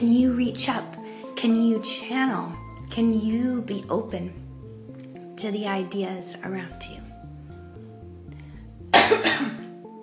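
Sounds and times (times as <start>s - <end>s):
speech: 0.0s - 4.4s, 5.4s - 7.0s
soft steady musical background: 0.0s - 10.0s
cough: 8.9s - 9.7s.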